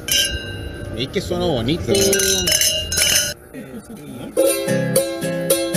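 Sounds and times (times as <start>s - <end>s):
glasses clinking in a toast: 0.0s - 0.7s, 1.9s - 3.4s
speech: 1.0s - 2.7s, 3.8s - 5.6s.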